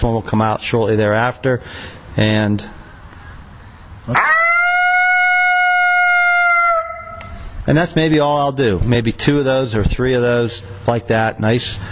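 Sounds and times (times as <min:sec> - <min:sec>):
speech: 0:00.0 - 0:02.8, 0:04.1 - 0:04.4, 0:07.7 - 0:11.8
lonesome howl call: 0:04.1 - 0:07.4.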